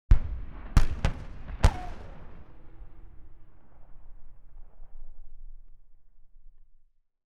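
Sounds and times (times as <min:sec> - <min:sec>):
Chieftain tank 105mm shell fired: 0:00.1 - 0:04.3.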